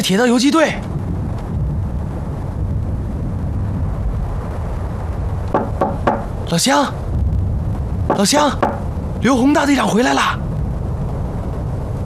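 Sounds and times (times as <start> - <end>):
speech: 0.0 - 0.9, 5.6 - 7.0, 8.1 - 10.5
steady low rumble: 0.0 - 12.0
sharp knocks on a door: 5.5 - 6.3, 8.1 - 8.8.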